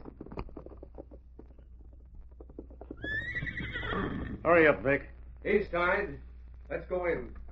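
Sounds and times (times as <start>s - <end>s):
horse hooves clip-clopping: 0.0s - 7.5s
horse whinnying: 2.8s - 4.6s
speech: 4.4s - 7.4s.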